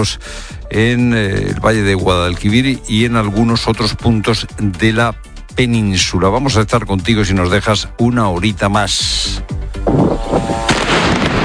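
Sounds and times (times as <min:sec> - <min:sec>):
speech: 0:00.0 - 0:10.5
artillery fire exchanged at night in Lebanon: 0:09.9 - 0:11.4.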